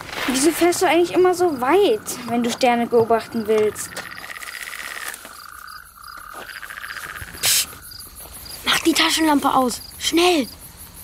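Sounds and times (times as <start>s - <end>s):
speech: 0.3s - 4.1s, 9.2s - 10.6s
toads croaking by a lake at night: 0.3s - 11.0s
loud hissing burst: 7.4s - 7.8s.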